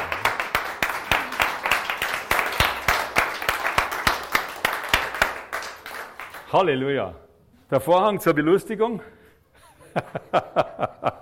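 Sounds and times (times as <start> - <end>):
crowd applauding in a room: 0.0 - 6.6
speech: 6.5 - 9.2, 10.0 - 11.2
laughter: 9.6 - 11.2.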